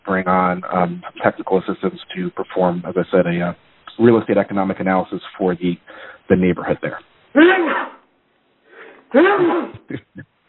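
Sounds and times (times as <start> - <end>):
speech: 0.0 - 8.0, 9.1 - 10.3
quiet breathy intake: 5.9 - 6.2, 8.7 - 9.7
person sneezing: 8.8 - 10.1.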